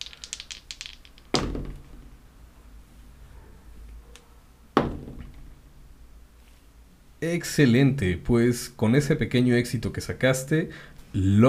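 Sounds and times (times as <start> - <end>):
three dice rolled in a tabletop roleplaying game: 0.0 - 2.0
speech: 7.2 - 11.4.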